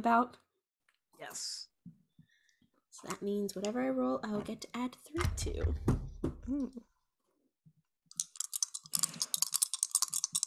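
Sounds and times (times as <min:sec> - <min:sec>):
speech: 0:00.0 - 0:00.4, 0:01.2 - 0:02.0, 0:03.0 - 0:06.9
typing on a computer keyboard: 0:08.1 - 0:10.4.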